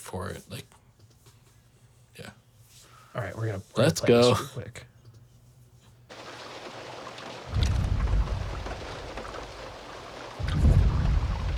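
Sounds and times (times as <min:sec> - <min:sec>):
speech: 0:00.1 - 0:00.7, 0:03.2 - 0:04.9
steady rumble: 0:06.1 - 0:11.5
massive deep booming T-Rex footsteps made from sonic booms: 0:07.3 - 0:11.5.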